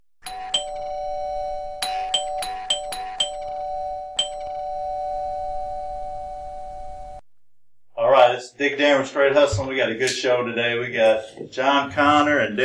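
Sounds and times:
doorbell chiming: 0.2 - 7.2
speech: 8.6 - 12.6.

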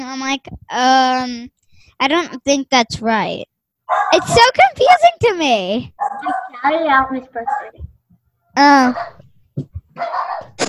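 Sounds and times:
speech: 0.1 - 7.9, 8.6 - 10.6
dog barking and yelping: 3.9 - 4.4, 6.0 - 6.7, 7.4 - 7.8, 8.9 - 9.2, 10.0 - 10.6.

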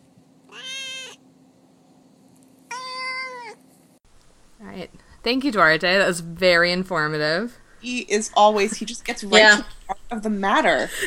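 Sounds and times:
faint steady hum: 0.0 - 11.0
domestic cat meowing: 0.5 - 1.2, 2.7 - 3.6
speech: 4.6 - 11.0.

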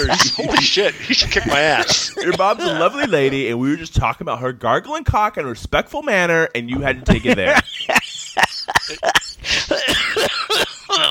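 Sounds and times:
person coughing: 0.0 - 3.4, 8.8 - 11.0
laughter: 0.0 - 3.9, 6.8 - 11.0
speech: 0.0 - 8.0, 8.9 - 9.9.

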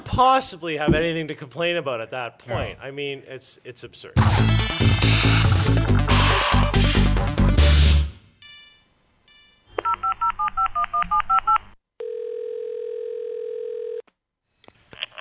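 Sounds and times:
speech: 0.1 - 5.7
music: 4.2 - 8.2
steady electronic phone tone: 8.5 - 14.0.

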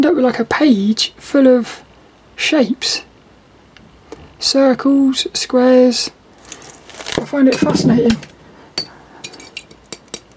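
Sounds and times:
speech: 0.2 - 3.1, 4.4 - 6.6, 7.2 - 8.3
glass water bottle clinking: 7.5 - 9.8.

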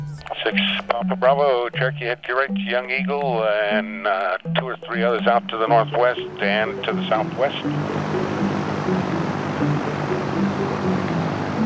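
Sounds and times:
speech: 0.4 - 8.3
kit-built Velocity aircraft engine drone: 4.5 - 11.6.

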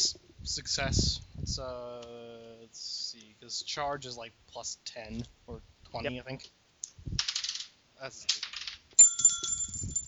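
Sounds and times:
speech: 0.5 - 7.2, 8.0 - 8.5
small hard die clattering and rattling: 7.2 - 10.0.

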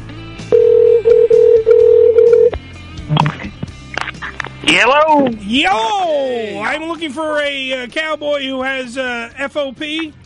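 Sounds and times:
electronic telephone dialing tones: 0.5 - 2.6
speech: 4.7 - 10.2.

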